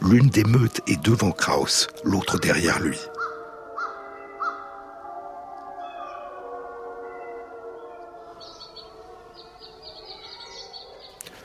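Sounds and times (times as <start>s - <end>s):
speech: 0.1s - 3.2s
brief sharp calls: 3.1s - 4.7s, 7.8s - 11.4s.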